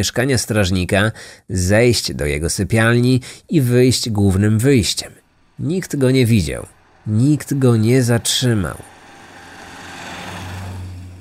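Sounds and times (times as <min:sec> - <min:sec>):
speech: 0:00.0 - 0:08.9
car engine driving away: 0:04.1 - 0:11.1.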